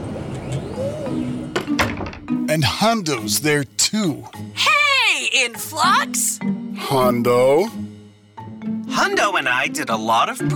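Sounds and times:
office door closing: 0:00.1 - 0:02.4
speech: 0:02.6 - 0:04.7, 0:05.4 - 0:07.8, 0:08.9 - 0:10.5.

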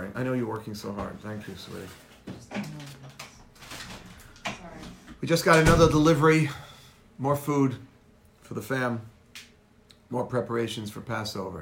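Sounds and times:
speech: 0:00.2 - 0:03.0, 0:05.2 - 0:07.9, 0:08.5 - 0:09.1, 0:10.1 - 0:11.6
doors being shut indoors: 0:05.5 - 0:06.2.

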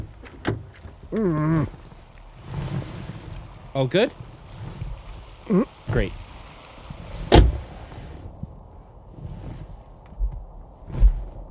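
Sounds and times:
car door hinge creaking: 0:00.0 - 0:02.0, 0:06.9 - 0:07.8
quiet rustling: 0:00.0 - 0:11.5
speech: 0:01.1 - 0:01.8, 0:03.8 - 0:04.3, 0:05.5 - 0:06.2
car door latch click: 0:07.3 - 0:07.6.

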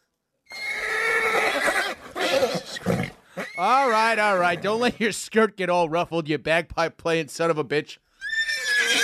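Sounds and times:
horse neighing: 0:00.5 - 0:04.8, 0:08.2 - 0:09.0
speech: 0:03.6 - 0:08.1.

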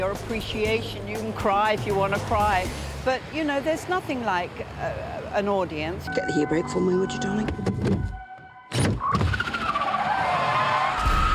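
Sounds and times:
speech: 0:00.0 - 0:08.0
car tires squealing in a skid: 0:09.0 - 0:11.3.

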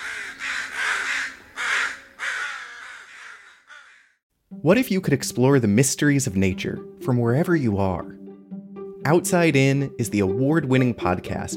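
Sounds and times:
crows cawing: 0:00.0 - 0:04.2
speech: 0:04.6 - 0:08.2, 0:09.0 - 0:11.5.

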